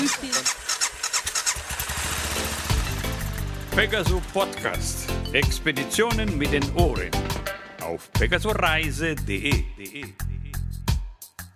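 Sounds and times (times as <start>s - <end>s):
speech: 0.0s - 0.6s, 3.8s - 7.3s, 7.9s - 10.2s
motorcycle engine cranking and starting at a winter motorcycle meeting: 0.0s - 5.6s.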